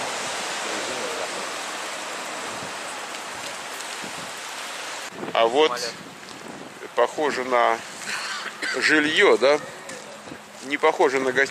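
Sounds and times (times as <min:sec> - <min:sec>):
ocean surf breaking at Pleasure Point: 0:00.0 - 0:10.5
speech: 0:05.4 - 0:06.1, 0:07.0 - 0:07.9, 0:08.7 - 0:09.8, 0:10.6 - 0:11.4.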